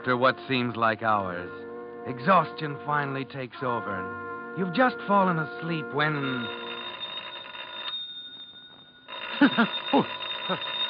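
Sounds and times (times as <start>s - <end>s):
speech: 0.0s - 6.7s, 9.6s - 10.7s
telephone ringing in a loud buzzing burst: 4.6s - 10.8s.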